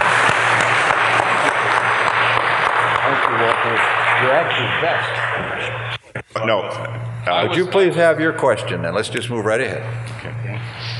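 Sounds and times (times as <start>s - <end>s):
lecture audience applauding a speaker: 0.0s - 5.9s
speech: 3.6s - 5.8s, 6.4s - 10.9s.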